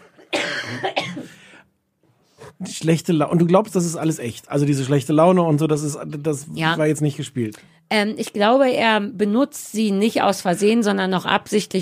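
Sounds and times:
smoker's cough: 0:00.0 - 0:01.6
speech: 0:02.6 - 0:11.7.

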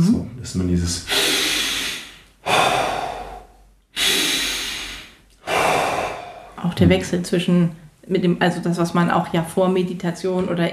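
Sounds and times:
speech: 0:00.0 - 0:01.4, 0:06.8 - 0:10.7
deep breathing in and out as a relaxation exercise: 0:01.0 - 0:07.0.

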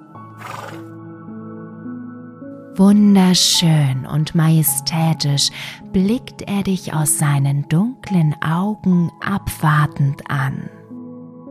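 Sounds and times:
black stallion neighing: 0:00.3 - 0:00.9
speech: 0:02.8 - 0:10.8.

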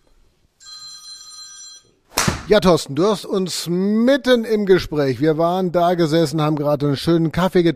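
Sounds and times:
telephone ringing with a steady electronic tone: 0:00.6 - 0:02.0
speech: 0:02.5 - 0:07.7.

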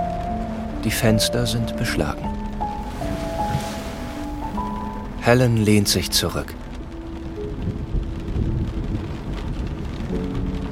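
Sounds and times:
heavy rain pouring on a small convertible car with its roof closed: 0:00.0 - 0:10.6
speech: 0:00.8 - 0:02.5, 0:05.2 - 0:06.6.

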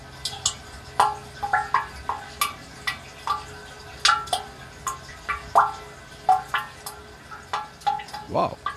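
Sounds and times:
water dripping inside a spring water catchment fed by plastic pipes: 0:00.0 - 0:08.7
speech: 0:08.3 - 0:08.6.

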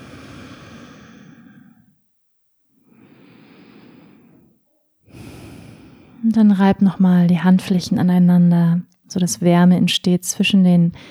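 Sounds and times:
slow deep breathing during a guided relaxation: 0:00.0 - 0:02.0, 0:02.7 - 0:06.3
speech: 0:06.3 - 0:11.0.

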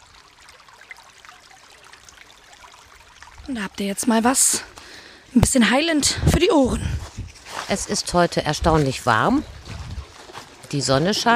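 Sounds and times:
brook babbling as it flows into a lake: 0:00.0 - 0:06.7, 0:07.7 - 0:11.3
speech: 0:03.5 - 0:07.0, 0:07.7 - 0:09.6, 0:10.7 - 0:11.3.

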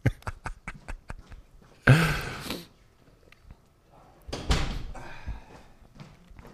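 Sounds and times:
door being pulled shut: 0:04.3 - 0:05.0.

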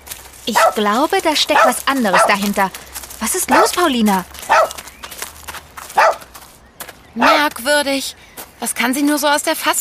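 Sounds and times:
dog barking: 0:00.5 - 0:00.9, 0:01.5 - 0:02.5, 0:03.5 - 0:03.8, 0:04.5 - 0:04.8, 0:06.0 - 0:06.2, 0:07.2 - 0:07.5
speech: 0:00.5 - 0:04.8, 0:07.2 - 0:09.7.

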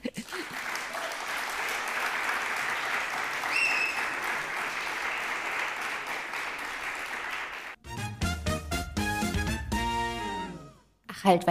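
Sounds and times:
large live audience applauding loudly: 0:00.0 - 0:07.8
music: 0:07.8 - 0:11.0
speech: 0:11.2 - 0:11.4.

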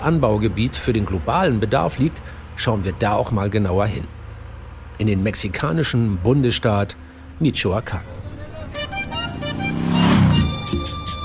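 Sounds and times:
speech: 0:00.0 - 0:04.2, 0:05.0 - 0:08.2
car engine humming as the vehicle drives: 0:04.1 - 0:11.2.

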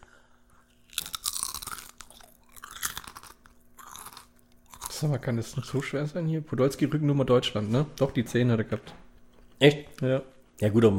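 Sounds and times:
potato chips being chewed with crisp crunching: 0:00.6 - 0:05.8
speech: 0:05.0 - 0:09.0, 0:09.6 - 0:10.9.

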